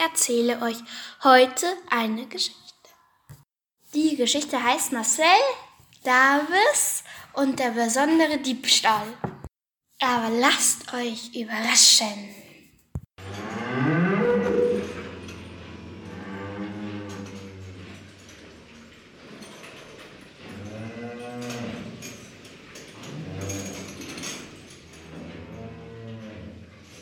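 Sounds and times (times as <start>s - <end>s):
speech: 0.0s - 2.6s, 3.9s - 9.4s, 10.0s - 12.5s
cows mooing with long drawn-out lowing calls on a farm: 13.2s - 19.2s, 20.4s - 26.9s.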